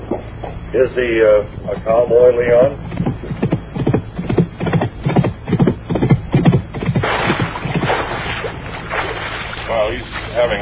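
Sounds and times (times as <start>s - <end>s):
speech: 0.7s - 3.0s
bucking horse's hooves clopping: 1.7s - 9.6s
broad splashing rush of water in a swamp: 6.5s - 10.5s.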